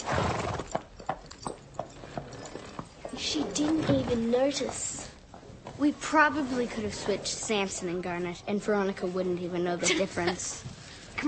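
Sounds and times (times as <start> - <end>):
horse hooves clip-clopping at a stable: 0.0 - 5.8
speech: 3.3 - 4.9, 5.8 - 11.2.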